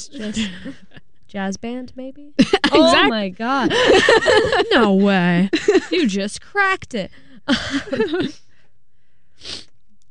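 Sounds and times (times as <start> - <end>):
laughter: 0.0 - 1.0, 2.4 - 6.2, 7.5 - 8.4
speech: 0.0 - 8.4, 9.4 - 9.7
loud nasal voiced sneezing or snorting: 9.4 - 9.7
quick sniff: 9.4 - 9.7.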